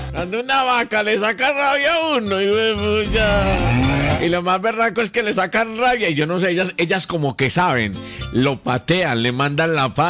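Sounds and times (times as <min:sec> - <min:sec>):
speech: 0:00.2 - 0:10.0
cow letting out a long low moo: 0:03.1 - 0:04.3.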